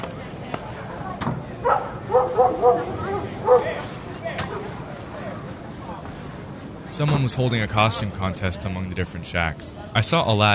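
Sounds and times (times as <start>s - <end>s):
murmur of people talking: 0.0s - 10.5s
dog barking: 1.6s - 3.8s
speech: 7.0s - 10.5s.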